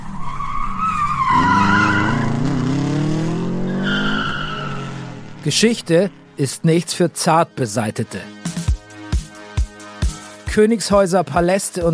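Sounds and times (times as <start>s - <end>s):
car tires screeching on asphalt as a car does doughnuts: 0.0s - 6.4s
speech: 5.4s - 8.4s, 10.6s - 11.9s.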